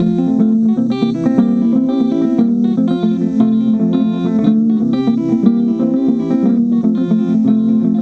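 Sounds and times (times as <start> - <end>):
bomba drum loop: 0.0 - 8.0.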